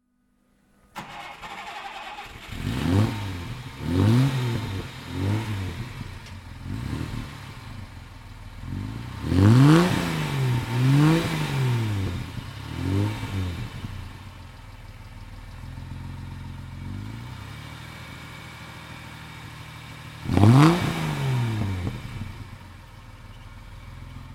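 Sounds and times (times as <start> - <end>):
Mercedes-Benz 220 SE fuel-injected car engine: 0.7 - 24.3.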